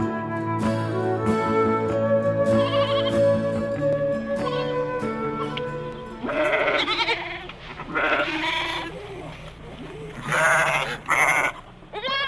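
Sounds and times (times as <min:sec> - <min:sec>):
steady tonal music: 0:00.0 - 0:06.6
several sheep bleating: 0:02.6 - 0:03.2, 0:06.2 - 0:09.0, 0:10.2 - 0:12.2.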